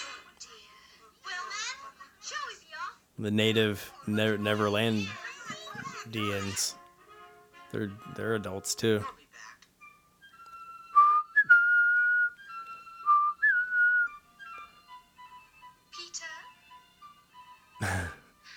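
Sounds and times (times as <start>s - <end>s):
speech: 3.2s - 5.2s, 6.1s - 6.8s, 7.7s - 9.2s
whistled melody of sustained and sliding notes: 9.8s - 15.8s
breathy noise: 17.8s - 18.4s.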